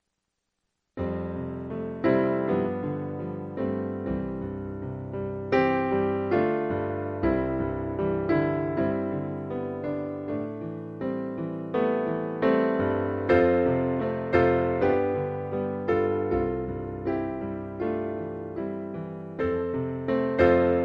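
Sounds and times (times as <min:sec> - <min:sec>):
piano: 0:00.9 - 0:20.8.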